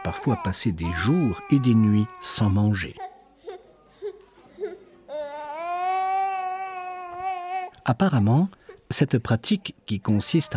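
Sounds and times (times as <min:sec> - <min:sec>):
baby whimpering and wailing: 0:00.0 - 0:07.8
speech: 0:00.1 - 0:03.1, 0:07.9 - 0:10.5.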